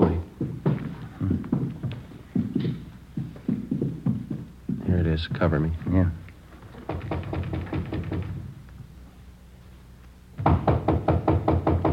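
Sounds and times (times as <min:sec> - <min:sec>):
police officers knocking heavily on a door: 0:00.0 - 0:05.5, 0:06.9 - 0:08.5, 0:10.4 - 0:11.9
speech: 0:05.2 - 0:06.2.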